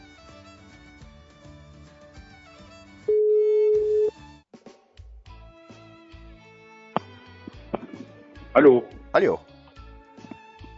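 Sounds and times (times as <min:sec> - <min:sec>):
telephone ringback tone during outgoing call: 0:03.1 - 0:04.1
speech: 0:08.6 - 0:09.5.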